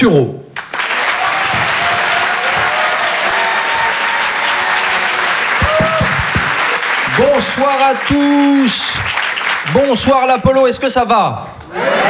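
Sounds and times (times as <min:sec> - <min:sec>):
speech: 0:00.0 - 0:00.4, 0:07.2 - 0:12.0
comedy show audience applauding a stand-up comedian: 0:00.6 - 0:11.0, 0:11.6 - 0:12.0
comedy show audience whistling: 0:01.2 - 0:10.0.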